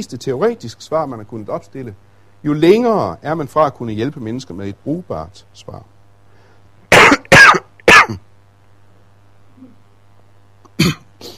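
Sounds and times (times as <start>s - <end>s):
speech: 0.0s - 5.9s, 8.1s - 8.3s
person coughing: 6.9s - 8.2s, 10.7s - 11.3s
person clearing throat: 6.9s - 8.3s, 10.7s - 11.3s.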